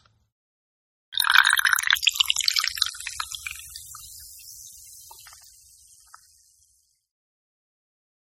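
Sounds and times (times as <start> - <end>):
soda pouring out of a can: 1.1 - 7.1.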